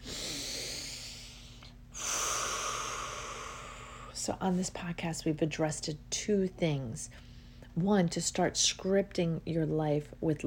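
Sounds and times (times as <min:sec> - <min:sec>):
deep breath: 0:00.0 - 0:04.2
speech: 0:04.2 - 0:10.4.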